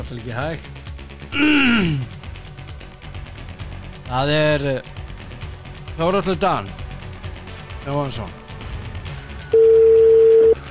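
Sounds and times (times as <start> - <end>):
speech: 0.0 - 2.2, 4.1 - 5.0, 6.0 - 6.8, 7.8 - 8.4
telephone tone while placing a call: 9.5 - 10.6.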